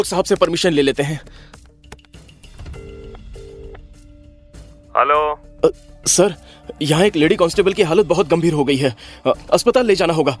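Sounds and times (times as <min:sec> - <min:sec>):
speech: 0:00.0 - 0:01.6, 0:05.0 - 0:10.3
two steady electronic phone ringing tones: 0:02.7 - 0:03.8.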